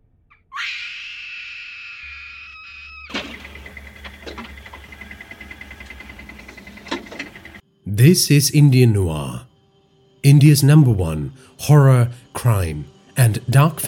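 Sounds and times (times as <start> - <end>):
woman screaming in terror in a cave: 0.5 - 3.1
speech: 8.0 - 9.5, 10.2 - 13.8.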